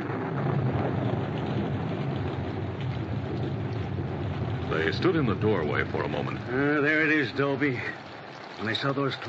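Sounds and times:
heavy rain: 0.0s - 9.2s
low thunder rumbling: 0.0s - 9.2s
speech: 4.7s - 9.2s.

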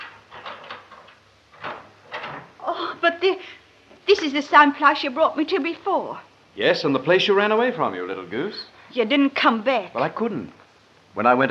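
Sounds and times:
lock clunk: 0.0s - 2.6s
speech: 3.0s - 10.6s, 11.2s - 11.5s.

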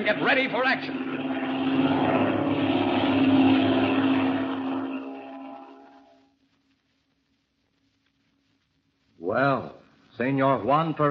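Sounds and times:
speech: 0.0s - 2.1s, 9.4s - 11.0s
black propeller airplane engine droning in flight: 0.0s - 6.2s.

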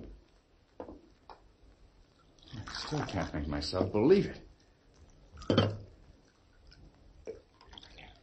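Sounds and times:
coffee pouring into a cup: 2.1s - 3.5s, 4.9s - 8.2s
speech: 2.9s - 4.5s, 5.5s - 5.8s.

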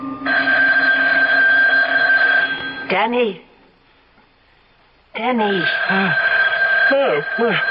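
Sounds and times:
telephone ringing with electronic tone: 0.3s - 3.0s, 5.4s - 7.6s
speech: 3.0s - 3.5s, 5.2s - 7.6s.

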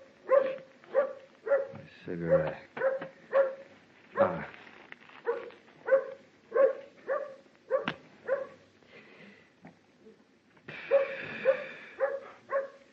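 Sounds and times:
dog barking: 0.2s - 4.4s, 5.2s - 8.6s, 10.8s - 12.9s
speech: 2.1s - 2.9s.

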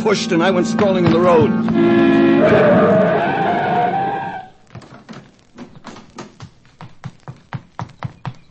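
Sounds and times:
speech: 0.0s - 3.6s
car braking hard on a highway with tires screeching: 1.2s - 4.5s.

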